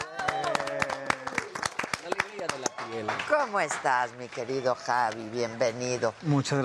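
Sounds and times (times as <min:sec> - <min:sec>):
small group clapping: 0:00.0 - 0:04.6
voices talking and cheering: 0:00.0 - 0:05.6
speech: 0:03.0 - 0:06.6.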